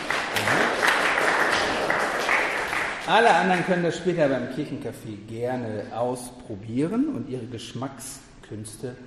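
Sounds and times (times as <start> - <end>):
audience applauding volunteer testers: 0.0 - 3.7
speech: 3.1 - 9.0.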